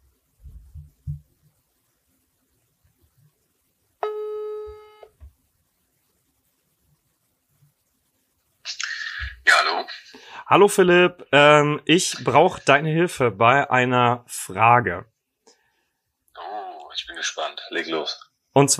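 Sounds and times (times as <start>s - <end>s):
phone ringing tone on speakerphone: 4.0s - 5.1s
speech: 9.8s - 15.1s, 17.1s - 18.7s.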